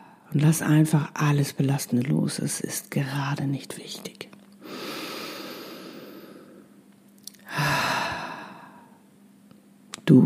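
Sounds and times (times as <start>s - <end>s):
speech: 0.3s - 4.3s
deep breath in: 4.6s - 6.8s, 7.4s - 9.0s.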